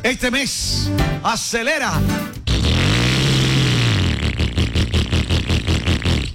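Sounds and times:
speech: 0:00.1 - 0:02.2
motorcycle engine revving with throttle blips: 0:02.5 - 0:06.2.

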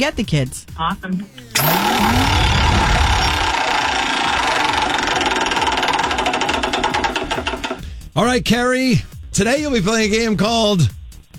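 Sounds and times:
speech: 0:00.0 - 0:03.2, 0:08.2 - 0:11.3
game-show prize wheel spinning: 0:01.5 - 0:07.8.

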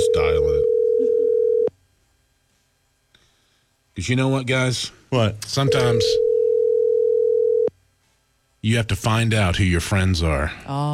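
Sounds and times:
telephone dial tone after dialing: 0:00.6 - 0:01.7, 0:05.7 - 0:07.7
speech: 0:04.0 - 0:06.2, 0:08.6 - 0:10.9.

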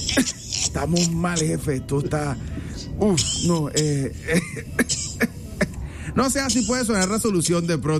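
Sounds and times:
woman coughing: 0:00.0 - 0:00.7, 0:03.2 - 0:05.7
speech: 0:00.2 - 0:05.1, 0:06.2 - 0:07.9.

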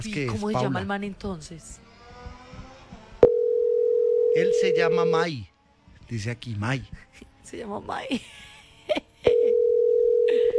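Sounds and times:
speech: 0:00.0 - 0:01.9, 0:04.4 - 0:05.5, 0:06.1 - 0:09.0
telephone ringing tone of an unanswered call: 0:03.2 - 0:05.2, 0:09.3 - 0:10.5.

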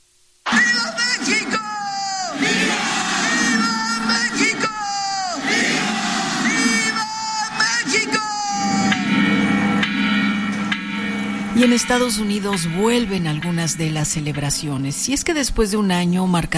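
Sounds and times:
large outdoor crowd shouting in unison in a plaza: 0:00.5 - 0:09.2
faint ringing bell: 0:03.3 - 0:05.4, 0:07.2 - 0:15.9
speech: 0:11.6 - 0:16.5.

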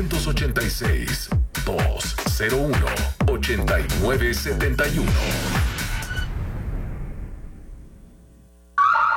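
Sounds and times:
speech: 0:00.0 - 0:05.7
low rumble: 0:03.5 - 0:08.7
loud electronic security alarm with harsh warbling tone: 0:08.8 - 0:09.1.

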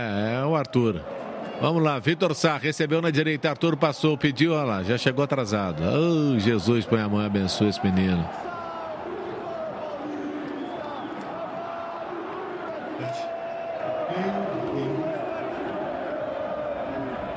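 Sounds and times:
speech: 0:00.0 - 0:08.5
large crowd of football fans chanting in a stadium: 0:08.3 - 0:17.3.

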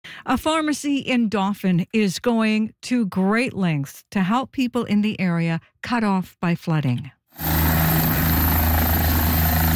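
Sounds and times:
speech: 0:00.2 - 0:07.5
helicopter departing a pharmacy in flood-hit Dauphin, rotor thrumming: 0:07.4 - 0:09.7.

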